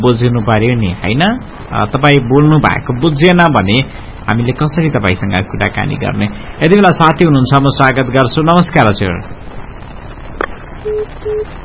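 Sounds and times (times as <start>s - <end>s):
speech: 0.0s - 9.5s
short low telephone beeps after a caller hung up: 10.8s - 11.6s.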